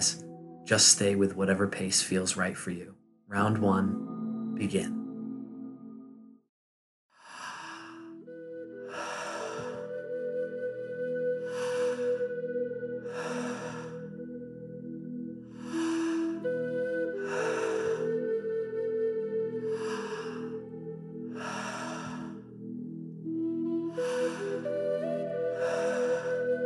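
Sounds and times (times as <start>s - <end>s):
sustained ambient musical tones: 0.0s - 6.5s, 8.0s - 26.6s
speech: 0.7s - 5.0s
recorded rhythmic breathing for a Tummo breathing exercise: 7.2s - 26.6s.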